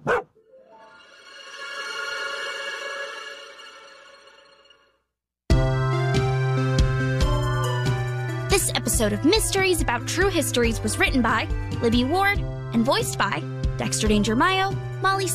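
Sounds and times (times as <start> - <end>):
dog barking: 0.0 - 0.4
music: 0.4 - 15.3
speech: 8.6 - 15.3.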